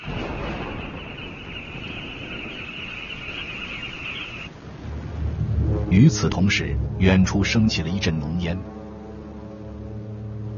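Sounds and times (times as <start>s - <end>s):
steady low rumble: 0.0s - 10.5s
thin high whine: 0.1s - 4.5s
speech: 5.9s - 8.8s.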